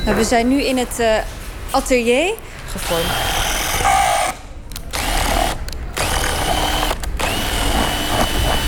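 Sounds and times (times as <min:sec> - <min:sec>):
speech: 0:00.1 - 0:03.4
power drill drilling a hole in plastic: 0:02.8 - 0:08.6.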